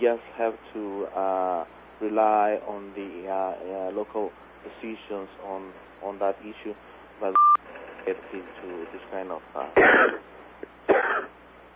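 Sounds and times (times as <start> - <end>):
speech: 0.0 - 7.4, 8.0 - 11.4
quiet line hum: 0.0 - 11.7
person coughing: 9.7 - 10.2, 10.9 - 11.3.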